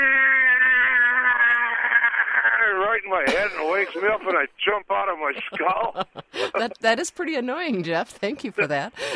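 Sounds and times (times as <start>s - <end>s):
voice imitating a refrigerated trailer motor kicking in: 0.0s - 2.9s
speech: 3.0s - 9.1s
laughter: 3.2s - 4.5s, 5.2s - 6.8s.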